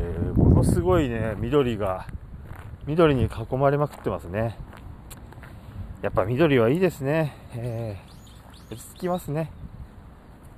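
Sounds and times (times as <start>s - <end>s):
speech: 0.6s - 2.2s, 2.8s - 4.8s, 6.0s - 8.1s, 8.7s - 9.6s
faint high bird chirps outdoors: 5.5s - 10.4s.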